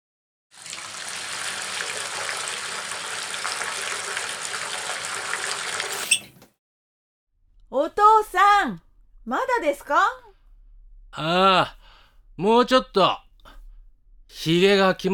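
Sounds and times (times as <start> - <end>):
running tap water while someone washes their face: 0.5 - 6.5
speech: 7.7 - 10.2, 11.1 - 11.8, 12.4 - 13.2, 14.3 - 15.1.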